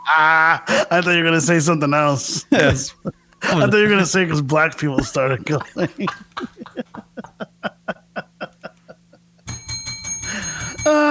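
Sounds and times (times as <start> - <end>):
speech: 0.1 - 6.9, 10.9 - 11.0
laughter: 2.2 - 9.2
continuous metallic ringing: 9.4 - 11.0
bell sound effect strikes: 9.5 - 10.9.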